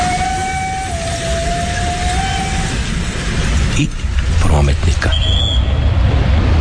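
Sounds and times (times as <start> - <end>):
train whistle: 0.0 - 2.9
low rumbling noise: 0.0 - 6.5
speech: 3.8 - 5.5.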